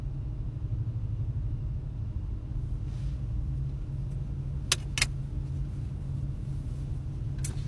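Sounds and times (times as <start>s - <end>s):
car engine rumbling in tunnel traffic: 0.0s - 7.6s.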